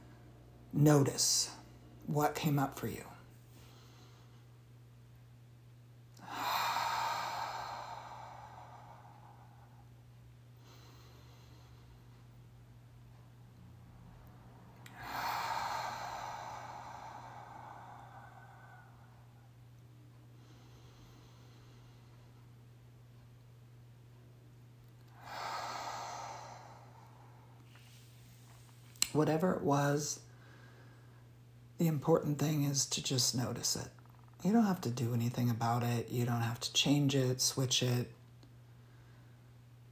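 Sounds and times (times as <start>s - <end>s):
low hum: 0.0s - 35.6s
speech: 0.7s - 3.1s, 29.2s - 30.3s, 31.8s - 38.2s
slow deep breaths during a guided reflection: 3.4s - 4.8s, 6.2s - 12.4s, 14.7s - 22.5s, 25.1s - 28.8s, 30.2s - 31.4s.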